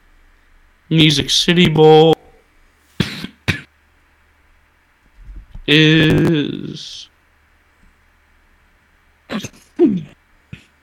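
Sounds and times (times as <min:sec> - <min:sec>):
speech: 0:00.9 - 0:02.2, 0:05.7 - 0:07.1, 0:09.3 - 0:10.1
loud person sneezing: 0:02.9 - 0:03.7, 0:09.3 - 0:10.8.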